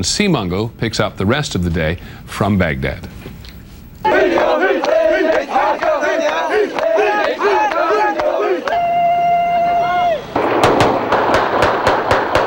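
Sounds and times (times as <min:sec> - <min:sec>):
speech: 0:00.0 - 0:03.2
loud crowd cheering and shouting in the street: 0:04.0 - 0:10.4
rapid string of sharp celebratory gunshots: 0:10.4 - 0:12.4.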